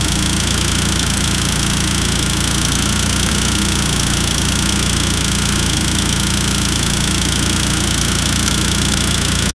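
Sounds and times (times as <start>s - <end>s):
tuned 2.0 litre 1980 BMW engine: 0.0s - 9.5s.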